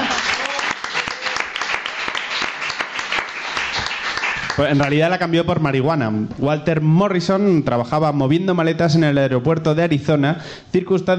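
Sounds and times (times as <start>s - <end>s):
crowd applauding: 0.0s - 5.0s
speech: 4.6s - 11.1s.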